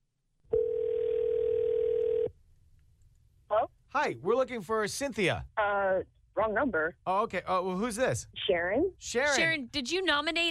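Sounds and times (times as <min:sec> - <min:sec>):
steady electronic telephone tone: 0:00.5 - 0:02.3
speech: 0:03.9 - 0:10.4.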